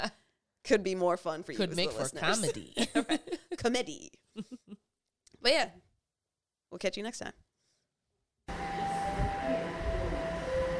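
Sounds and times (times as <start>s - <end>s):
speech: 0.0s - 4.7s, 5.4s - 5.8s, 6.7s - 7.4s
laughter: 2.6s - 3.6s
faint high tonal whines of wheels or motors on rails: 8.5s - 10.7s
train rumbling with a low mechanical roar: 8.5s - 10.7s.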